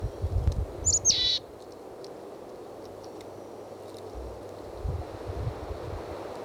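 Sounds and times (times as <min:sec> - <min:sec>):
low wind rumble: 0:00.0 - 0:01.5, 0:04.1 - 0:06.3
wild chickadee high thin call notes: 0:00.9 - 0:01.4.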